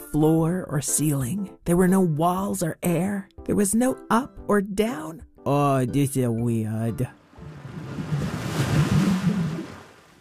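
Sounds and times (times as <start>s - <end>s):
speech: 0.1s - 7.2s
water churning and swirling: 7.2s - 10.1s.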